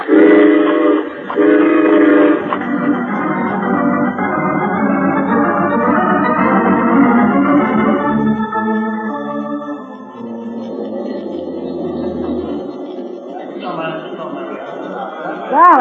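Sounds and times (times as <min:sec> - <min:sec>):
long train whistle blasts: 0:00.0 - 0:02.6
rumble and clatter of a train rolling in: 0:00.0 - 0:15.8
laughter: 0:10.7 - 0:15.8.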